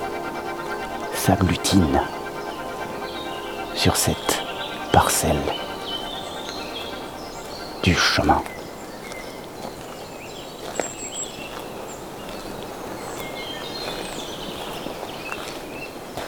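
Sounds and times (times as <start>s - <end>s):
birds singing and chirping in a fir forest: 0.0s - 9.4s
speech: 1.2s - 2.2s, 3.8s - 4.4s, 5.0s - 5.7s, 7.8s - 8.6s.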